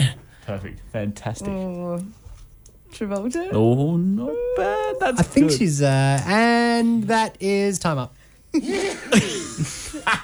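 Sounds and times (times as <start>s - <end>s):
speech: 0.5s - 2.2s, 2.9s - 10.2s
voices murmuring: 3.2s - 7.0s
laughter: 4.3s - 5.7s, 8.6s - 10.2s
deliberate loud cough: 8.6s - 10.2s.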